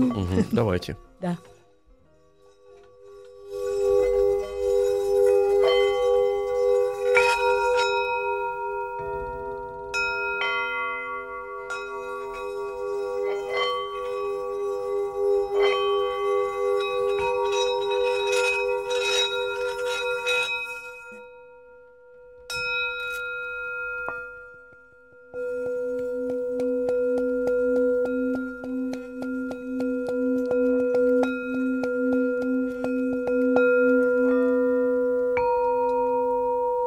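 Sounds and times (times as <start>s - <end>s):
speech: 0.0s - 1.6s
small metal singing bowls ringing: 2.2s - 36.8s.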